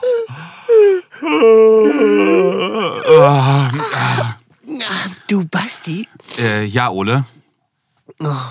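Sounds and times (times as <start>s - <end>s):
person yawning with groaning moaning tones: 0.0s - 4.4s
speech: 1.2s - 2.2s, 5.8s - 7.4s, 8.2s - 8.4s.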